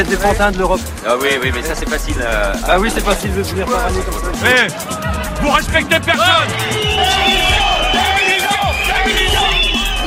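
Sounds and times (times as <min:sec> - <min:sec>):
speech: 0:00.0 - 0:08.1
angry crowd shouting and jeering at politicians: 0:04.4 - 0:10.0.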